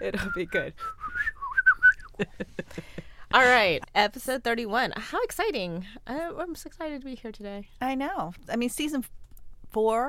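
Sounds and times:
speech: 0.0s - 1.0s, 2.2s - 10.0s
person whistling a short wavering melody: 0.2s - 2.1s.

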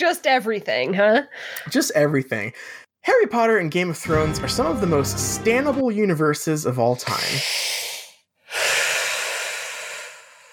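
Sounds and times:
speech: 0.0s - 7.9s
breathing in through the nose and out through the mouth: 7.0s - 10.5s.

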